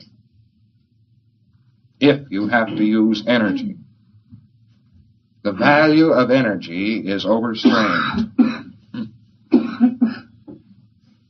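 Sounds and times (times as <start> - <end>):
speech: 2.0 - 3.9, 5.4 - 8.6
audience member coughing in a room: 2.4 - 3.8, 7.6 - 10.7.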